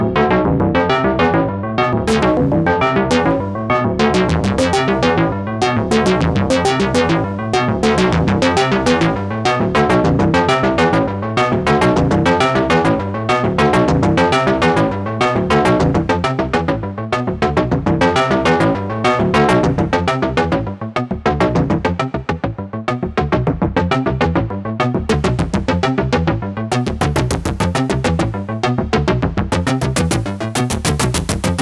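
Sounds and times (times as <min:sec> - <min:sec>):
FX bass drum arpeggio: 0:00.2 - 0:31.6.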